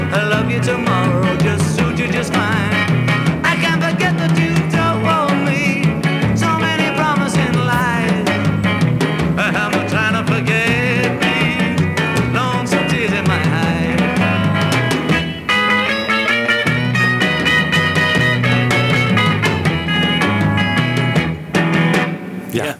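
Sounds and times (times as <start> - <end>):
speech: 0.1 - 3.0, 4.0 - 5.2
full band playing with steady rhythm and bass: 0.1 - 22.1
bright lead guitar lick: 7.6 - 9.5, 14.2 - 22.6.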